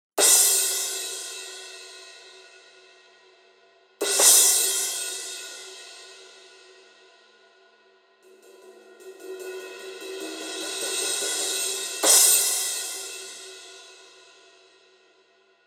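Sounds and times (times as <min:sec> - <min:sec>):
18-inch paper thin crash cymbal: 0:00.2 - 0:15.6.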